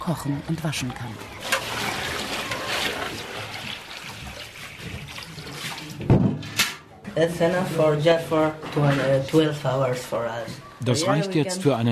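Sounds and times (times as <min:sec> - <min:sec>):
speech: 0:00.0 - 0:01.4, 0:07.2 - 0:11.9
canal water poured from a bucket: 0:01.2 - 0:06.1.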